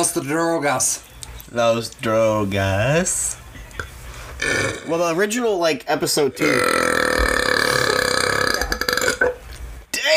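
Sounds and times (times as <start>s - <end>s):
speech: 0.0s - 3.4s, 4.4s - 6.8s
long loud rumbling burp: 4.4s - 4.9s, 6.4s - 9.4s.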